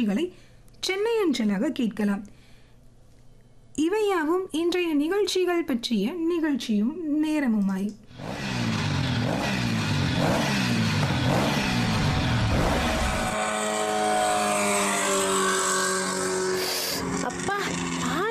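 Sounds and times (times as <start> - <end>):
speech: 0.0 - 2.4, 3.8 - 8.5
vehicles speeding by fast: 8.2 - 18.2
high smooth whining tone: 11.6 - 18.2.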